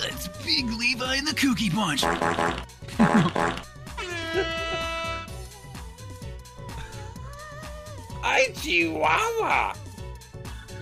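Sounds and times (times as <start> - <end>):
speech: 0.5 - 3.7, 4.3 - 4.9, 8.3 - 9.8
comedic fart sound effect: 2.1 - 5.2.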